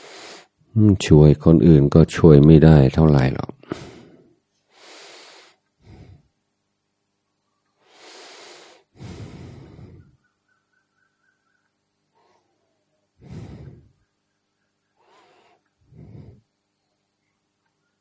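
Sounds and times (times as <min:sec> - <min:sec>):
slow breathing in and out: 0:00.0 - 0:00.6, 0:03.6 - 0:06.4, 0:07.8 - 0:10.3, 0:12.1 - 0:14.1, 0:14.9 - 0:16.6
speech: 0:00.8 - 0:03.9.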